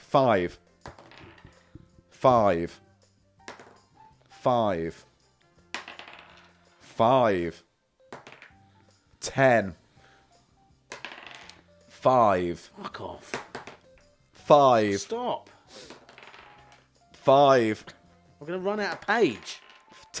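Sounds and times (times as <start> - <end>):
speech: 0.1 - 0.7, 2.2 - 2.8, 4.4 - 5.1, 7.0 - 7.7, 9.2 - 9.8, 12.0 - 13.4, 14.5 - 15.9, 17.2 - 19.6
dice rattling and clattering across a hard surface: 0.8 - 2.0, 3.5 - 3.8, 5.7 - 6.9, 8.1 - 8.6, 10.9 - 11.6, 13.3 - 14.1, 15.7 - 16.9, 18.7 - 20.1.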